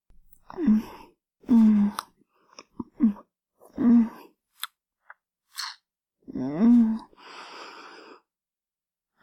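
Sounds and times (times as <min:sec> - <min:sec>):
soft voiced moans and sighs: 0:00.4 - 0:04.4, 0:05.6 - 0:08.3
drawn-out slurp: 0:05.5 - 0:05.8
wet mouth smacking sounds: 0:05.5 - 0:05.8.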